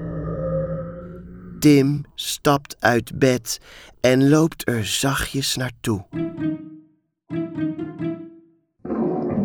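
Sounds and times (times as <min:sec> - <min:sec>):
deep animal growling from inside a closet in a bedroom: 0:00.0 - 0:01.6, 0:08.8 - 0:09.4
speech: 0:01.6 - 0:06.7.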